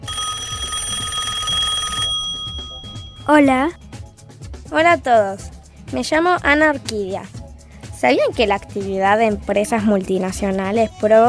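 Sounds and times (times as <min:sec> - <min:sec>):
telephone ringing with an incoming call: 0:00.0 - 0:04.0
speech: 0:03.3 - 0:03.8, 0:04.7 - 0:07.4, 0:08.0 - 0:11.2.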